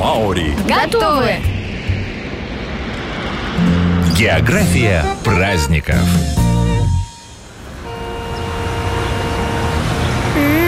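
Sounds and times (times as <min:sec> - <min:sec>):
speech: 0:00.0 - 0:01.6, 0:03.6 - 0:07.0
city street traffic roar in New Zealand: 0:00.0 - 0:10.6
vehicles passing on a city street in New Zealand: 0:00.0 - 0:10.6
horn-like tone: 0:03.6 - 0:10.6.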